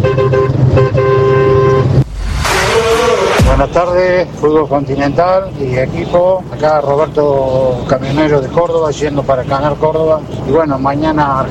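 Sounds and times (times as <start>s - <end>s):
truck horn blasts: 0.0s - 3.9s
road noise: 0.0s - 11.4s
low engine rumble: 1.7s - 10.4s
speech: 3.6s - 11.4s.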